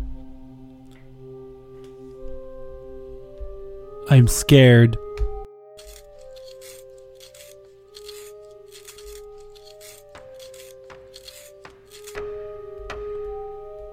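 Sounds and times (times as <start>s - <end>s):
sustained musical tones: 0.3s - 13.9s
speech: 4.1s - 5.0s
pencil being sharpened: 5.8s - 12.2s.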